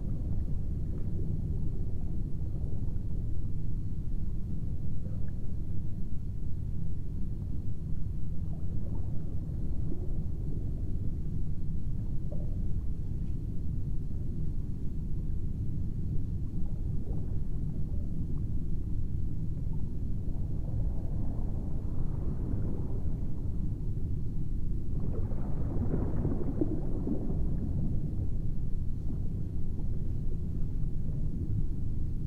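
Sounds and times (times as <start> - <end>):
heavy low drone of fans: 0.0 - 32.2
underwater humming: 0.0 - 32.2
bubbling water: 25.0 - 28.5.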